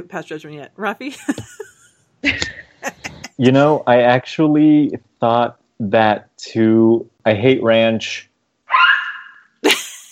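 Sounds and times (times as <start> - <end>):
speech: 0.0 - 1.6, 2.2 - 8.3
dog giving a drawn-out whiny yelp: 8.7 - 9.5.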